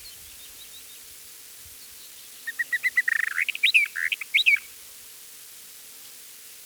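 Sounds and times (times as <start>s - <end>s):
Eastern Orphean warbler song: 0.0s - 1.1s, 1.8s - 4.7s.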